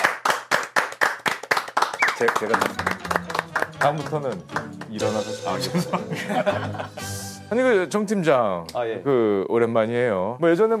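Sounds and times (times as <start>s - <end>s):
group of office staff clapping to welcome a newly arrived executive: 0.0s - 5.3s
speech: 2.2s - 10.7s
laughter: 5.6s - 7.3s.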